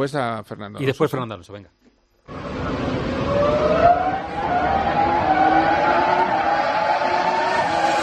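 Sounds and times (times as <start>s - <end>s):
speech: 0.0s - 2.9s
Renault R25 Formula One car engine whine: 2.3s - 8.0s.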